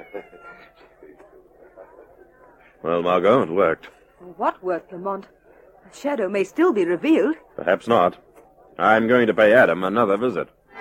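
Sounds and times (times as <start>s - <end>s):
cat meowing: 0.0s - 0.9s
speech: 2.2s - 10.8s.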